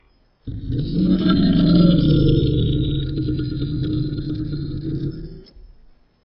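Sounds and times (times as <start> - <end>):
Masiakasaurus dinosaur roars: 0.5 - 5.5.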